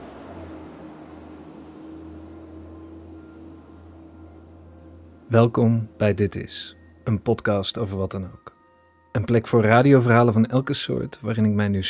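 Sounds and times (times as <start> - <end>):
truck driving past outside: 0.0 - 6.0
speech: 5.3 - 8.5, 9.2 - 11.8.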